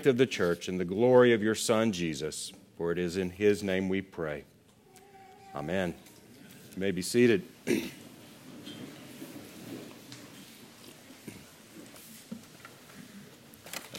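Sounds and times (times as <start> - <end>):
speech: 0.0 - 4.5, 5.5 - 6.1, 6.8 - 8.0
faint rustling: 4.5 - 13.9
person with an itchy throat clearing throat: 7.6 - 8.1.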